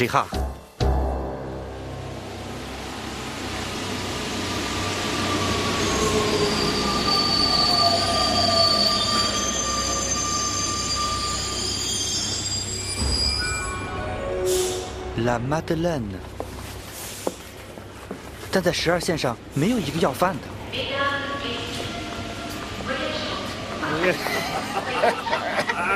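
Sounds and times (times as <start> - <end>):
speech: 0.0 - 0.4, 15.2 - 16.3, 18.5 - 21.2, 23.9 - 25.9
metro train rumbling on rails: 0.0 - 25.9
metro train wheels squealing in high-pitched tones: 4.9 - 14.0
laughter: 24.0 - 25.9.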